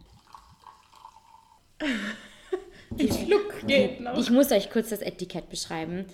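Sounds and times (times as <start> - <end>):
drink poured briskly into a glass: 0.0 - 1.7
speech: 1.8 - 2.2, 3.0 - 6.1.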